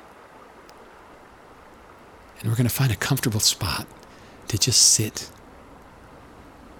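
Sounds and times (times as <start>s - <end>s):
ocean surf washing on shore: 1.5s - 5.4s
speech: 2.4s - 5.4s.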